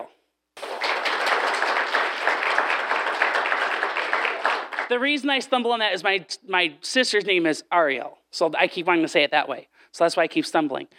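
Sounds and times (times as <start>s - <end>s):
crowd applauding: 0.6s - 4.9s
speech: 4.9s - 10.9s.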